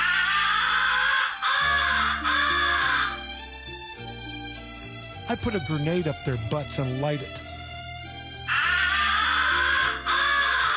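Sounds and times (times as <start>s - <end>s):
raspy crow recognition caws blown on a game call: 0.0s - 3.2s, 8.5s - 10.7s
speech: 5.3s - 7.5s.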